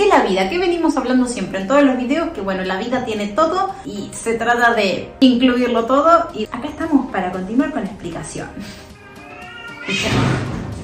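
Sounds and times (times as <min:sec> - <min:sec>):
speech: 0:00.2 - 0:08.9, 0:09.8 - 0:10.6
kitten meowing: 0:09.2 - 0:10.4.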